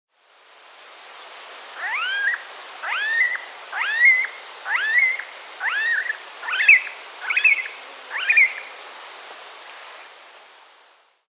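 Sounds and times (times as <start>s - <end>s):
smooth-billed ani Crotophaga ani giving rising whining calls: 1.8s - 8.8s.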